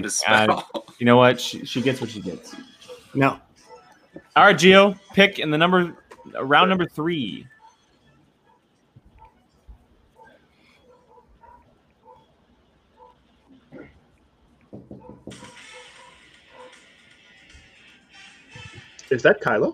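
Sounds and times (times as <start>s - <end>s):
speech: 0.0s - 3.5s, 4.2s - 7.5s, 19.1s - 19.7s
dog barking across a yard at a person: 2.8s - 4.0s, 5.9s - 6.6s, 7.5s - 7.8s, 8.4s - 9.4s, 10.1s - 12.3s, 12.9s - 13.2s, 14.9s - 16.9s.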